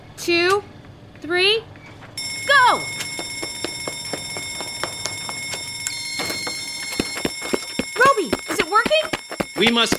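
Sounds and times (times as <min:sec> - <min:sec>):
speech: 0:00.2 - 0:01.7, 0:02.4 - 0:03.0, 0:08.7 - 0:09.9
shrill electronic smoke alarm ringing: 0:02.2 - 0:09.9
rapid regular clicking pulses: 0:03.1 - 0:09.9.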